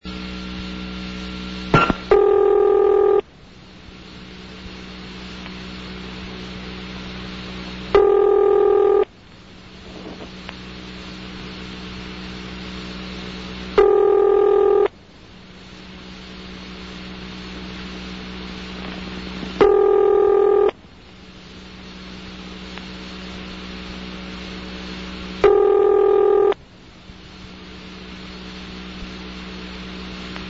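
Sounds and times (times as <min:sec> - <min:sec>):
Bell System telephone ringback tone: 0:01.8 - 0:03.2, 0:08.0 - 0:09.1, 0:13.8 - 0:14.9, 0:19.6 - 0:20.7, 0:25.4 - 0:26.6.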